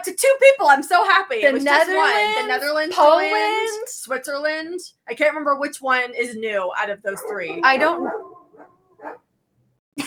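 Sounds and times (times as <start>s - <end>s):
speech: 0.0s - 9.2s
dogs barking and yipping excitedly: 1.9s - 3.7s, 7.2s - 9.2s.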